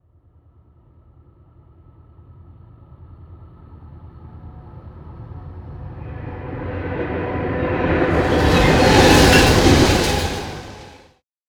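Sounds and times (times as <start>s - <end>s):
train in a tunnel: 3.2s - 11.2s.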